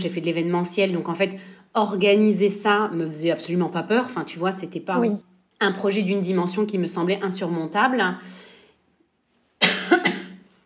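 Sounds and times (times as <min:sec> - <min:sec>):
speech: 0:00.0 - 0:08.4
person coughing: 0:09.6 - 0:10.4.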